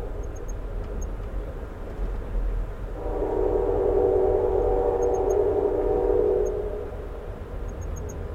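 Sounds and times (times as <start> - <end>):
low rumble of a moving train at night in America: 0.0 - 8.3
train horn blast: 3.0 - 7.0.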